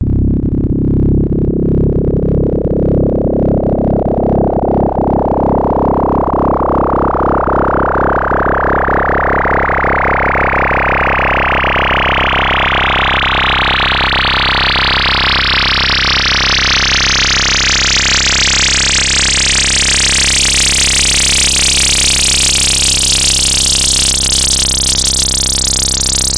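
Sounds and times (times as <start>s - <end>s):
angry synth with sweeping filter: 0.0s - 26.3s.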